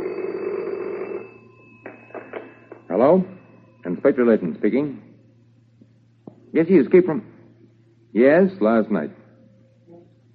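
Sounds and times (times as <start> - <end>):
old-fashioned telephone bell ringing in an inspector's office: 0.0 - 4.4
speech: 3.0 - 3.3, 4.0 - 5.1, 6.6 - 7.3, 8.1 - 9.2.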